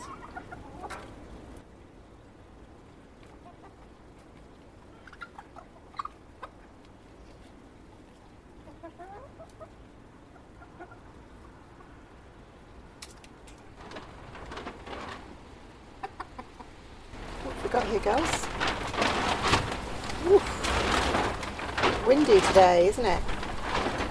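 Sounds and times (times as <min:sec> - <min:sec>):
hens clucking: 0:00.0 - 0:01.6, 0:03.2 - 0:07.6, 0:08.2 - 0:12.2, 0:15.8 - 0:24.0
speech: 0:17.8 - 0:18.4, 0:22.1 - 0:23.3.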